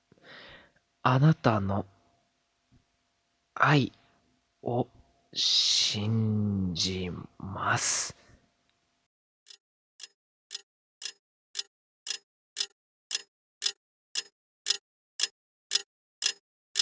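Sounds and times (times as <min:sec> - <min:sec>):
speech: 0:01.0 - 0:02.0, 0:03.6 - 0:04.0, 0:04.6 - 0:08.2
cheap alarm clock ticking: 0:09.5 - 0:16.8.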